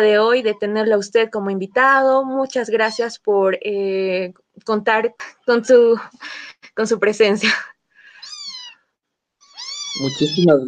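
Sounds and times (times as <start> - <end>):
speech: 0.0 - 7.7, 10.0 - 10.6
domestic cat meowing: 8.2 - 10.6.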